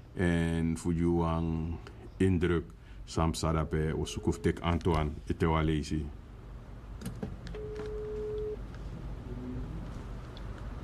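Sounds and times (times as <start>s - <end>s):
speech: 0.2s - 6.2s, 7.0s - 7.4s
telephone ringing tone: 7.6s - 8.6s.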